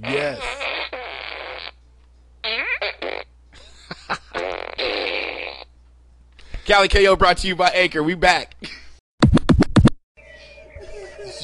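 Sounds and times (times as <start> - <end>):
speech: 0.0 - 0.7, 6.7 - 8.7
toy fart gun fart sounds: 0.0 - 1.8, 2.4 - 3.3, 4.4 - 5.7.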